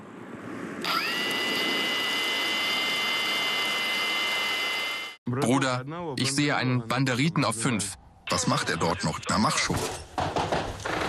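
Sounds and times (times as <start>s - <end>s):
drone motor whirring into a loud buzzing whine: 0.8s - 5.2s
speech: 5.5s - 10.4s.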